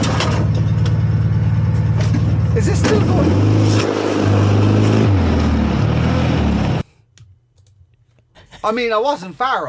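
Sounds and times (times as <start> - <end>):
car engine roaring at high speed: 0.1 - 6.9
speech: 8.6 - 9.6.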